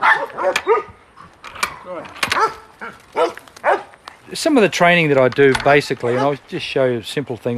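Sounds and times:
dog barking: 0.0 - 1.0, 2.4 - 3.9
speech: 4.3 - 7.5.

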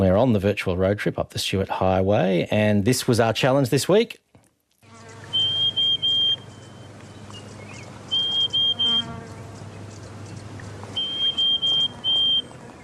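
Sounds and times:
speech: 0.0 - 4.2
Pied Honeyeater calling in high thin piping whistles: 5.3 - 9.1, 10.9 - 12.8.

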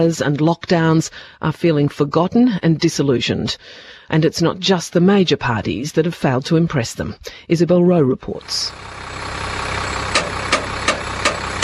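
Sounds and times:
speech: 0.0 - 9.3
bus engine idling at a bus and coach depot in the Blue Mountains: 8.4 - 11.6
sharp clicks: 10.1 - 11.6.

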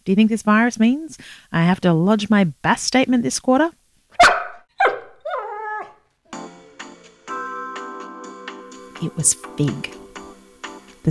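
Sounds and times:
speech: 0.0 - 3.8, 9.0 - 10.0
dog barking: 4.2 - 5.5.

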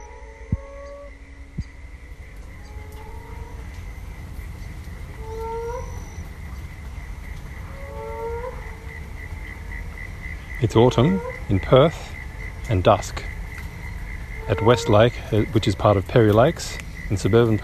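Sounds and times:
constant high-pitched drone: 0.0 - 6.5, 10.6 - 16.6
low rumbling noise: 0.0 - 17.6
moaning frog chorus calling from burrows at a lake: 0.0 - 17.6
speech: 10.6 - 12.1, 12.7 - 13.3, 14.5 - 17.6.

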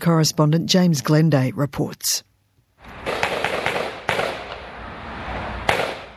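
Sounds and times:
speech: 0.0 - 2.3
gunshots: 2.8 - 4.8, 5.6 - 6.1.

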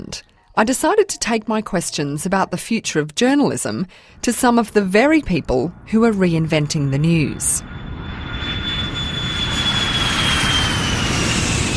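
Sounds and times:
speech: 0.0 - 7.8
airplane engine roar while taxiing to the gate in London: 3.9 - 11.7
thin high whine of an airplane engine: 6.8 - 11.7.

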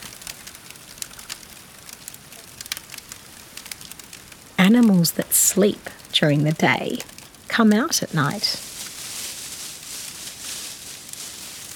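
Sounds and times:
campfire crackling with burning wood: 0.0 - 11.7
speech: 4.7 - 8.7.

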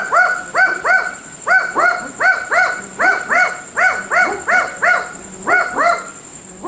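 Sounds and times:
pair of barking owls calling: 0.0 - 6.6.

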